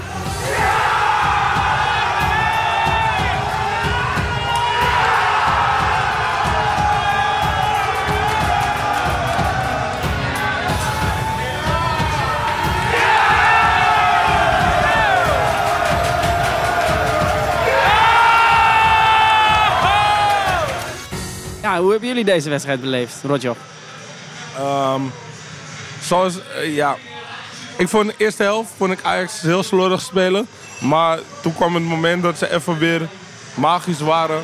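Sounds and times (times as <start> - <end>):
football fans' voices shouting together: 0.0 - 21.0
football fans in a packed pub roaring and chanting: 0.0 - 21.1
speech: 21.8 - 23.8, 24.6 - 25.3, 26.0 - 27.1, 27.8 - 34.4.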